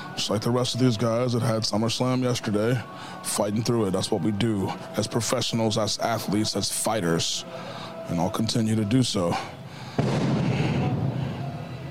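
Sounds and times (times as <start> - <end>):
speech: 0.2 - 10.3
stage pyrotechnics exploding at a professional wrestling event: 10.0 - 11.2.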